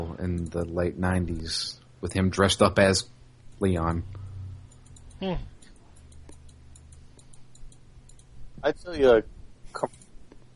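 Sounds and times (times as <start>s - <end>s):
low hum: 0.0s - 10.5s
speech: 0.1s - 4.2s, 5.2s - 5.5s, 8.6s - 10.0s
light computer mouse clicking: 4.7s - 8.3s, 9.8s - 10.5s.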